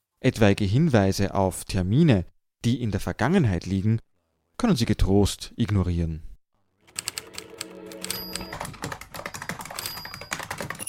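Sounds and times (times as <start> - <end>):
speech: 0.2 - 6.3
typing on a keyboard: 6.9 - 10.8.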